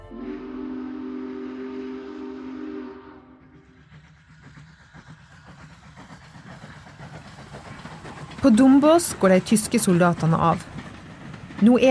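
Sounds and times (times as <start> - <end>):
train whistle blowing a sustained chord: 0.0 - 3.7
moving train rumbling and clattering along the tracks: 0.0 - 11.8
speech: 8.4 - 10.7, 11.6 - 11.8.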